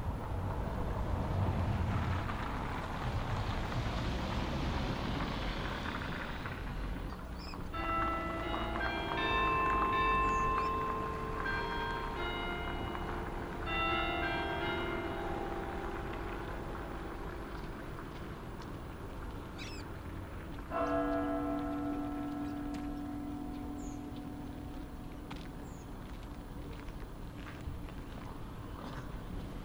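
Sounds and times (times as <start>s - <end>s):
rumble of passing car traffic: 0.0s - 29.6s
church bell striking one o'clock in the afternoon: 7.7s - 19.6s, 20.5s - 27.6s.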